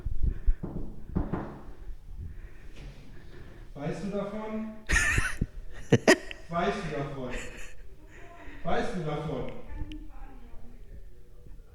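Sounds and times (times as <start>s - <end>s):
knocking on a door: 0.4s - 1.9s
speech: 3.8s - 4.8s, 8.6s - 9.6s
laughter: 4.9s - 8.8s.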